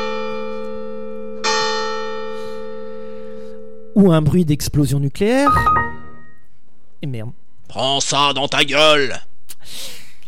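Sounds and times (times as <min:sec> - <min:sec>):
church bell ringing: 0:00.0 - 0:03.9
speech: 0:04.0 - 0:05.8, 0:07.0 - 0:10.0.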